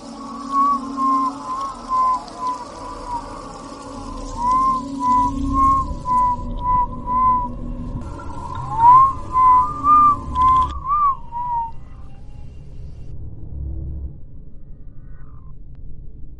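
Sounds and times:
low steady hum: 0.0 - 16.3
person whistling a thin wavering tune in a dark house: 0.2 - 7.6, 8.5 - 11.9.

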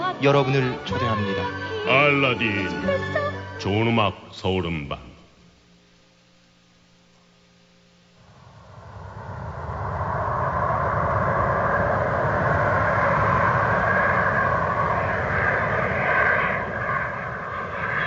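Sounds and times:
speech: 0.2 - 5.1
private jet airplane engines roaring on an airfield runway: 8.2 - 18.0.

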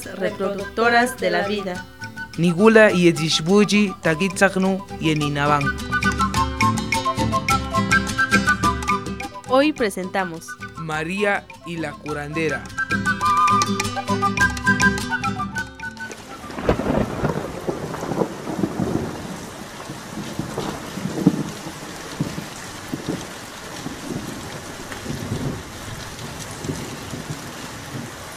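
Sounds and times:
speech: 0.0 - 6.0, 9.5 - 13.0
steady rain falling on village roofs at nightfall: 0.0 - 6.2, 16.0 - 28.3
tonal music: 0.0 - 17.3
thunder rumbling: 16.2 - 28.3.

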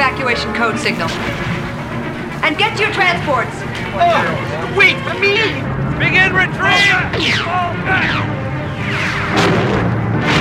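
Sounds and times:
speech: 0.3 - 1.6, 2.4 - 9.8
continuous rumbling din of crashes and explosions: 1.0 - 4.6, 5.6 - 10.3
laser blast shots sealing a passageway during an attack on a base: 7.2 - 10.3.

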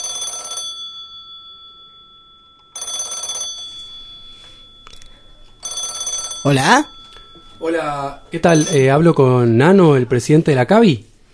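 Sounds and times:
electronic telephone ringing during a call: 0.0 - 10.0
faint steady tone: 0.7 - 9.7
speech: 6.4 - 6.9, 7.6 - 11.1.

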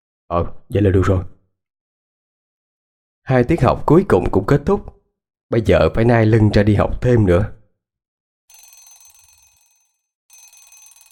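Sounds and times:
speech: 0.3 - 1.4, 3.3 - 7.6
alarm clock ringing at dawn with metallic bell clatter: 8.5 - 11.1.

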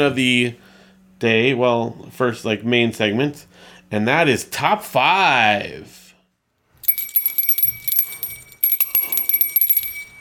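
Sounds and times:
speech: 0.0 - 0.6, 1.2 - 6.0
small bell ringing and jingling: 6.8 - 10.1.

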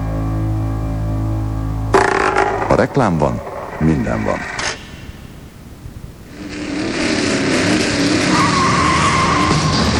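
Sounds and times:
sustained high whine: 0.0 - 6.8
speech: 2.8 - 4.6
taxis racing on a track, engines roaring: 6.3 - 9.9.

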